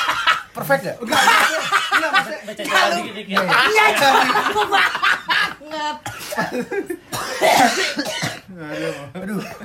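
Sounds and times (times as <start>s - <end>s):
laughter: 0.0s - 7.1s
speech: 0.6s - 5.0s, 5.7s - 9.6s
person coughing harshly from a bad cough: 6.0s - 9.6s.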